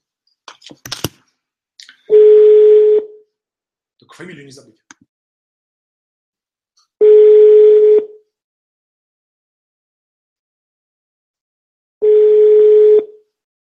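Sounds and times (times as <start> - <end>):
buzzy telephone ringback tone while calling: 2.1 - 3.1, 7.0 - 8.2, 12.0 - 13.2
speech: 4.2 - 4.9.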